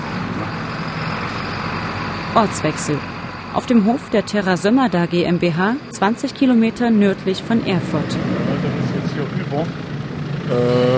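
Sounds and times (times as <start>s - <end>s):
broadband road noise: 0.0s - 10.9s
heavy truck engine rumbling: 0.0s - 10.9s
speech: 2.4s - 9.8s, 10.5s - 10.9s.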